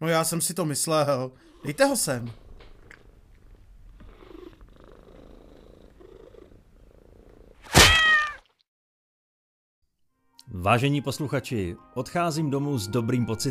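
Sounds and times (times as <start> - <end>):
speech: 0.0 - 2.4, 10.6 - 13.4
domestic tomcat purring: 1.4 - 7.6
domestic tomcat meowing: 7.7 - 8.5.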